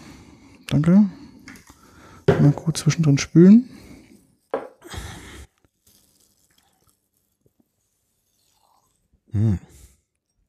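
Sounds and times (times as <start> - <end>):
speech: 0.8 - 1.2, 2.4 - 3.8
liquid pouring into a glass: 5.9 - 9.3.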